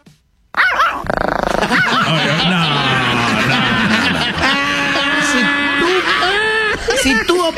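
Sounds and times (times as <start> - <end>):
small dog barking sound effect: 0.5 - 2.2
laughter: 1.6 - 7.5.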